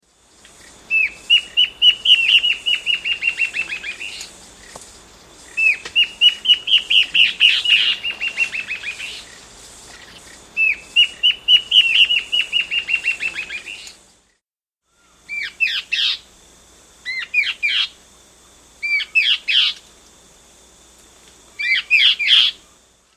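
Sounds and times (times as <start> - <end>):
Warbling Antbird singing in South America: 0.8 - 4.7, 5.4 - 9.4, 10.0 - 14.0, 14.9 - 16.3, 17.0 - 18.0, 18.8 - 19.8, 21.6 - 22.8.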